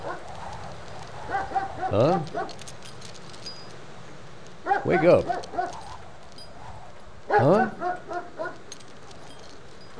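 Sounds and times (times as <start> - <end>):
dog barking: 1.3 - 2.5, 4.6 - 5.8, 7.3 - 8.6
speech: 1.9 - 2.8, 4.8 - 5.8, 7.3 - 7.7.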